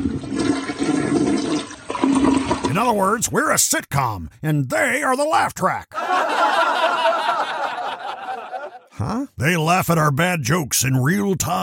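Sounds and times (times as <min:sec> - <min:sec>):
toilet flushing: 0:00.0 - 0:02.9
speech: 0:02.8 - 0:06.6, 0:09.0 - 0:11.6
laughter: 0:06.0 - 0:09.1.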